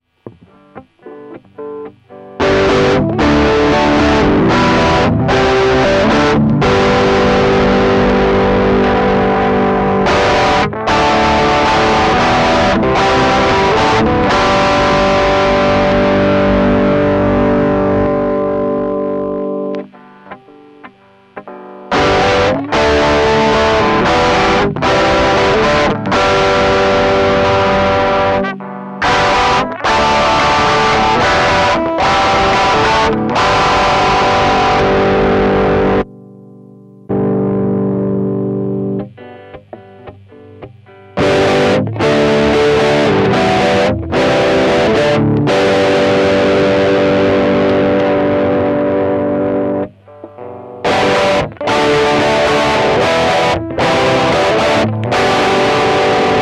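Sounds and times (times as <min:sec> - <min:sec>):
high gain guitar chord: 0:00.0 - 0:56.4.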